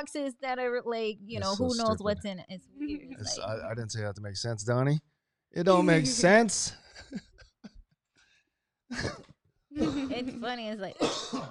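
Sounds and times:
speech: 0:00.0 - 0:07.3, 0:09.8 - 0:11.4
smoker's cough: 0:08.9 - 0:10.4, 0:11.0 - 0:11.4.

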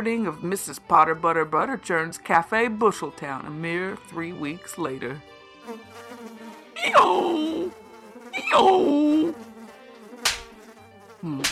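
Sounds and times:
speech: 0:00.0 - 0:07.8, 0:08.4 - 0:09.5, 0:11.2 - 0:11.4
flies buzzing: 0:05.6 - 0:11.4
sharp tap: 0:10.2 - 0:10.6.

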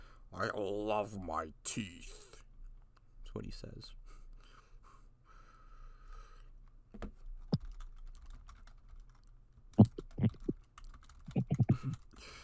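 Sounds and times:
speech: 0:00.3 - 0:02.2, 0:03.4 - 0:04.0
computer keyboard typing: 0:07.4 - 0:12.4.

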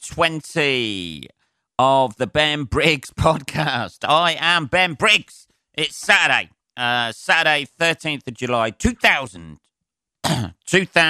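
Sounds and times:
speech: 0:00.1 - 0:11.0
man clearing his throat harshly with a choking cough: 0:10.2 - 0:10.7.

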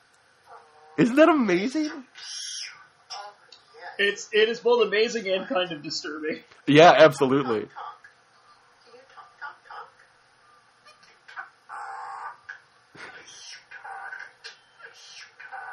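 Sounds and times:
speech: 0:01.0 - 0:02.4, 0:04.0 - 0:07.9
Indian myna bird calling: 0:02.1 - 0:02.8, 0:13.2 - 0:15.7.

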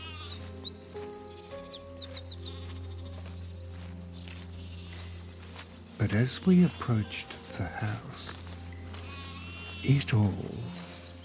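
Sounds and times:
sheep bleating outdoors: 0:00.0 - 0:00.4, 0:04.7 - 0:05.1, 0:06.1 - 0:10.8
birds chirping and trilling outdoors: 0:00.0 - 0:11.2
speech: 0:06.0 - 0:08.4, 0:09.8 - 0:10.8.

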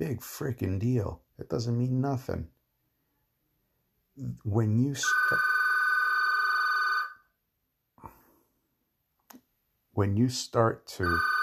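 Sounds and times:
speech: 0:00.0 - 0:02.6, 0:04.2 - 0:05.6, 0:10.0 - 0:11.4
telephone bell ringing: 0:05.0 - 0:07.3, 0:11.0 - 0:11.4.

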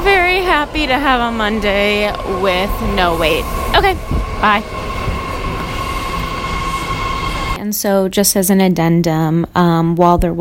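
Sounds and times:
commuter train arriving at station: 0:00.0 - 0:07.6
thin high metallic whine of commuter train: 0:00.0 - 0:07.6
speech: 0:00.4 - 0:04.9, 0:07.6 - 0:10.3.

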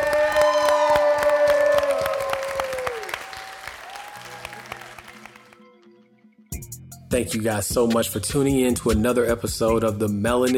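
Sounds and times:
faint cheers: 0:00.0 - 0:05.0
crowd applauding: 0:00.0 - 0:05.9
speech: 0:07.1 - 0:10.5.

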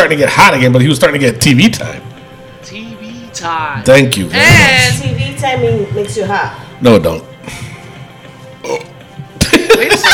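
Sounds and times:
speech: 0:00.0 - 0:02.8, 0:03.4 - 0:07.6, 0:08.6 - 0:08.9, 0:09.8 - 0:10.1
loud burp after drinking Coke: 0:08.6 - 0:09.0
laughter: 0:09.4 - 0:10.1.

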